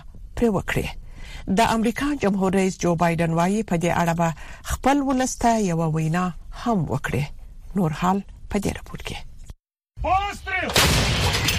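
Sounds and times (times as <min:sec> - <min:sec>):
speech: 0:00.4 - 0:09.3, 0:10.0 - 0:11.1
artillery cannon fire from Ukrainian forces shelling Russian troops: 0:10.7 - 0:11.5.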